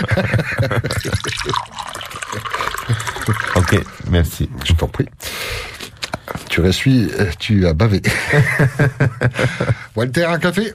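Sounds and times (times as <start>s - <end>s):
laughter: 0.0s - 1.7s, 8.1s - 9.9s
speech: 0.0s - 1.7s, 4.2s - 5.3s, 6.6s - 10.7s
tap water poured into a glass: 0.9s - 4.1s.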